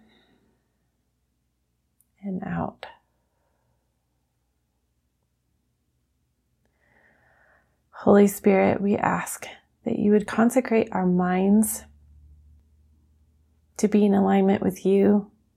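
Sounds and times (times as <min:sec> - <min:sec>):
speech: 0:02.4 - 0:02.9, 0:08.0 - 0:11.9, 0:13.8 - 0:15.3
deep breath drawn in sharply: 0:06.7 - 0:07.8.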